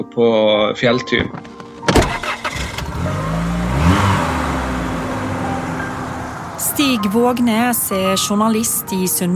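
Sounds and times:
speech: 0:00.0 - 0:01.6, 0:06.8 - 0:09.3
sharp clunks: 0:01.7 - 0:02.9
car engine starting and revving as the vehicle pulls away: 0:02.0 - 0:08.6.

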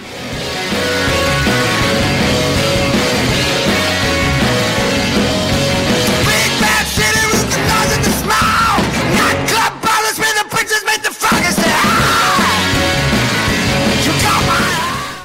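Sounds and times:
pounding drums: 0:00.0 - 0:09.8, 0:11.2 - 0:15.0
dense distorted guitars: 0:00.0 - 0:15.2
loud raucous garage rock'n'roll song: 0:00.0 - 0:15.2
shouted yelling vocal: 0:06.2 - 0:13.2, 0:13.8 - 0:15.2.

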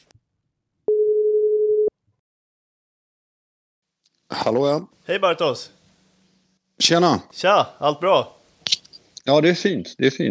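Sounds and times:
telephone ringing tone of an outgoing call: 0:00.9 - 0:01.9
speech: 0:04.3 - 0:05.8, 0:06.8 - 0:10.2.

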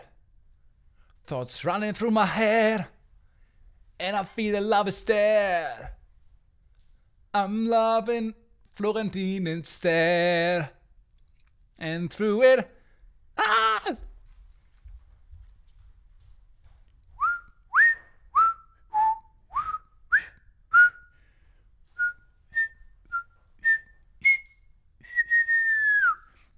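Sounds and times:
speech: 0:01.3 - 0:03.0, 0:04.0 - 0:06.0, 0:07.3 - 0:10.8, 0:11.8 - 0:12.8, 0:13.4 - 0:14.1
person whistling a high melody: 0:17.2 - 0:21.2, 0:21.9 - 0:26.4.

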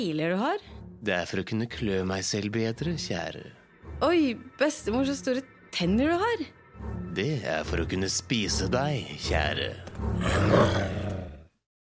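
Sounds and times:
speech: 0:00.0 - 0:11.0
growling wolf roar sound effect: 0:09.9 - 0:11.5.

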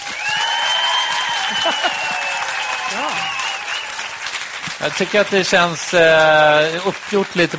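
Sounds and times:
voices cheering: 0:00.0 - 0:04.3
audience clapping to vote: 0:00.0 - 0:07.5
speech: 0:01.6 - 0:02.0, 0:02.9 - 0:03.4, 0:04.8 - 0:07.5.

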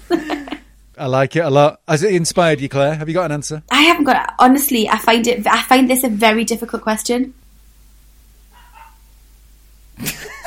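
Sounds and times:
speech: 0:01.0 - 0:07.4, 0:10.0 - 0:10.3
dog barking: 0:08.5 - 0:09.1
faint dog yips or whines: 0:08.5 - 0:09.1.

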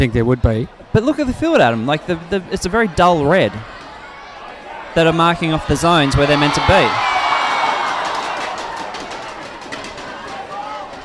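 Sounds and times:
speech: 0:00.0 - 0:03.8, 0:05.0 - 0:07.1
crowd chatter at an AFL match: 0:00.0 - 0:11.0
children shouting and cheering at an AFL match: 0:03.6 - 0:11.0.

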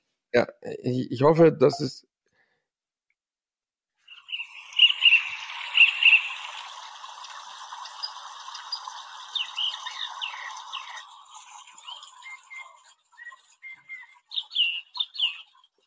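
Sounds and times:
speech: 0:00.3 - 0:02.1
nightingale singing: 0:04.1 - 0:06.6, 0:08.0 - 0:11.1, 0:11.8 - 0:15.6.

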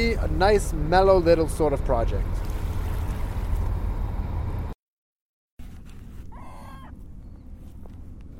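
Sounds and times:
dockside water and boat noise: 0:00.0 - 0:04.8, 0:05.6 - 0:08.3
speech: 0:00.2 - 0:02.5
seagull call: 0:06.3 - 0:07.5.

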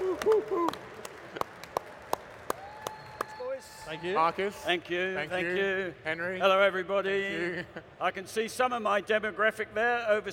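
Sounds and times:
thin scattered applause from a small audience: 0:00.0 - 0:04.7
speech: 0:03.9 - 0:10.3.

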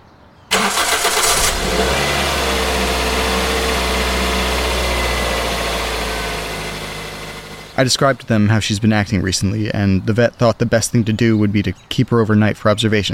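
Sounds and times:
car engine starting: 0:00.5 - 0:08.4
speech: 0:07.8 - 0:13.1.

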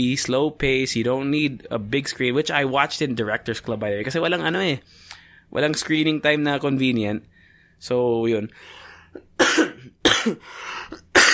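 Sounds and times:
speech: 0:00.0 - 0:11.3
person coughing: 0:09.1 - 0:11.3.

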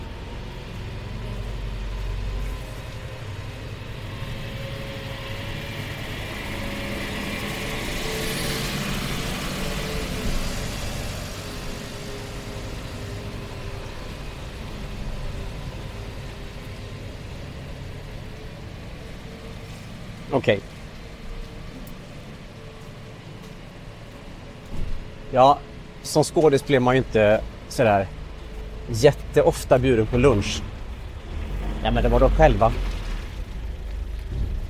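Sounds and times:
steady low traffic noise on a city street: 0:00.0 - 0:34.6
truck engine rumble on a city street: 0:00.0 - 0:34.6
speech: 0:20.4 - 0:20.7, 0:25.3 - 0:28.2, 0:28.9 - 0:30.7, 0:31.8 - 0:32.9.

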